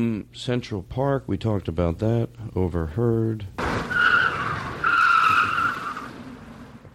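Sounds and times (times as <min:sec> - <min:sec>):
speech: 0:00.0 - 0:03.9
vehicle rumbling: 0:02.9 - 0:06.9
car tires screeching: 0:03.6 - 0:06.9.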